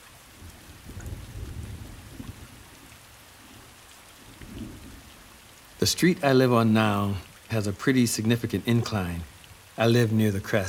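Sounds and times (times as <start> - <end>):
slow steady rain falling: 0.0 - 10.6
speech: 5.8 - 10.6.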